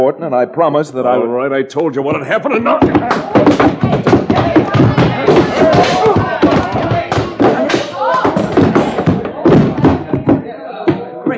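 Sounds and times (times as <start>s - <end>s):
speech: 0.0s - 3.9s
grunting voices: 2.1s - 11.3s
heavy thuds and impacts: 2.7s - 11.1s
body crashing down: 2.8s - 11.0s.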